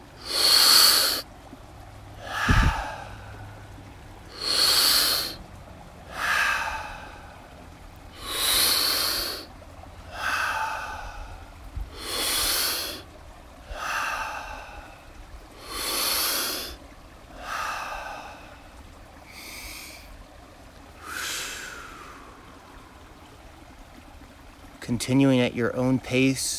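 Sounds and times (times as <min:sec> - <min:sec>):
deep breathing in and out through the mouth: 0:00.2 - 0:01.3, 0:02.2 - 0:03.7, 0:04.3 - 0:05.4, 0:06.1 - 0:09.5, 0:10.1 - 0:13.0, 0:13.6 - 0:18.7, 0:21.0 - 0:22.6
speech: 0:24.9 - 0:26.5.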